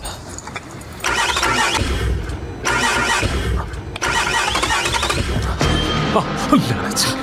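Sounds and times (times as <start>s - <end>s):
car engine cranking and failing to start: 0.3s - 5.7s
speech: 6.1s - 7.1s.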